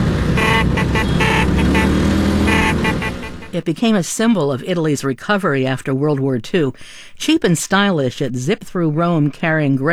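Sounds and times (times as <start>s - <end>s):
Vespa scooter small engines idling and revving: 0.0s - 3.6s
Vespa scooter horns beeping: 0.0s - 3.7s
speech: 3.6s - 9.9s.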